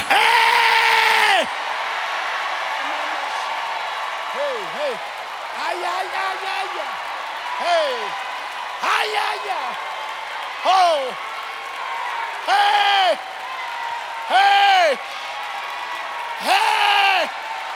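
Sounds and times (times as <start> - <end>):
crowd crying out and shouting: 0.0 - 17.7.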